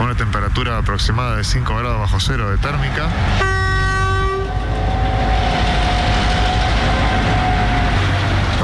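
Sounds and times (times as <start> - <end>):
train hauled by locomotives rumbling and clattering on rails in sub-zero cold: 0.0 - 8.6
speech: 0.2 - 3.9
multi-tone locomotive horn blast: 3.3 - 8.4.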